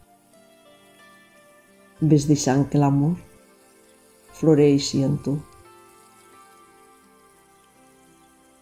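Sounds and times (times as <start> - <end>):
speech: 2.0 - 3.3, 4.4 - 5.5
water falling onto leaves and soil of plants while watering: 3.4 - 8.6.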